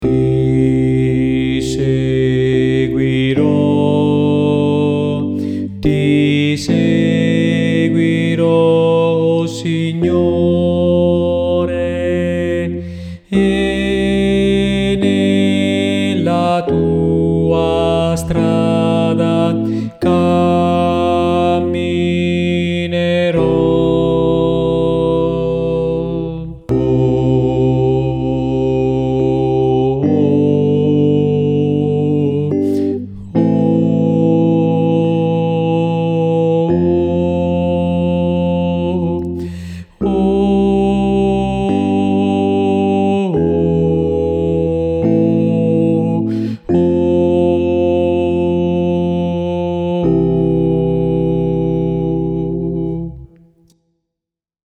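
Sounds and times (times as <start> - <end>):
contralto voices: 0.0 - 53.6.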